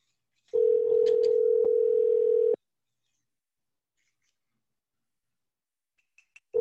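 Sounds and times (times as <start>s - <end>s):
phone ringback tone: 0.6s - 2.6s.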